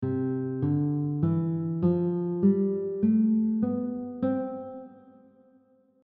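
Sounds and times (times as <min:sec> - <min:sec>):
guitar playing a C major scale over one octave: 0:00.0 - 0:05.7.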